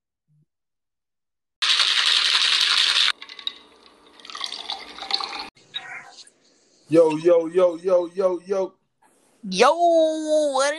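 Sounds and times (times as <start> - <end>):
drink pouring into a red cup: 1.6 - 5.6
speech: 6.9 - 8.8, 9.4 - 10.7.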